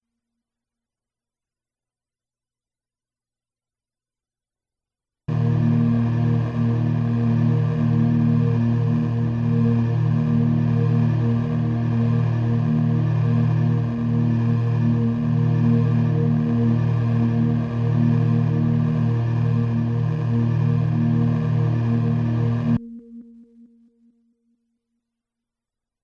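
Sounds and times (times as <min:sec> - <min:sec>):
choir drone in E flat: 0:05.3 - 0:23.2.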